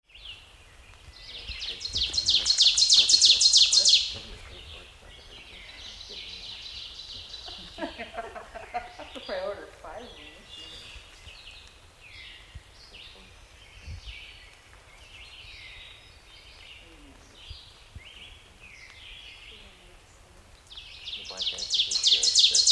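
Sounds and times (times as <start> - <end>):
ovenbird singing: 0.0 - 22.6
laughter: 7.3 - 9.6.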